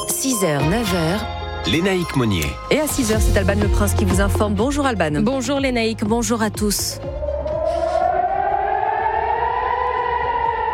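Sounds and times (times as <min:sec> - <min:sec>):
speech: 0:00.2 - 0:07.3
air raid warning siren wailing in Israel at night during an Iranian attack: 0:07.1 - 0:10.7.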